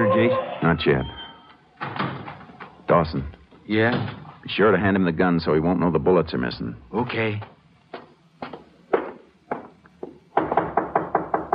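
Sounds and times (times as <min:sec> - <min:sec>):
speech: 0:00.0 - 0:01.2, 0:02.9 - 0:07.5
knocking on a door: 0:08.9 - 0:11.5.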